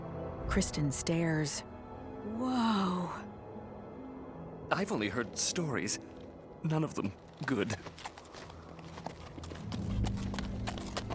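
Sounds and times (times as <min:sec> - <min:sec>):
speech: 0:00.5 - 0:03.3, 0:04.7 - 0:08.1
horses' hooves clopping across an icy bridge: 0:06.9 - 0:11.1.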